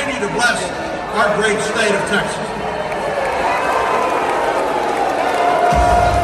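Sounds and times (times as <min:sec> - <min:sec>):
speech: 0:00.2 - 0:02.6
large convention crowd booing a speaker: 0:01.9 - 0:06.2.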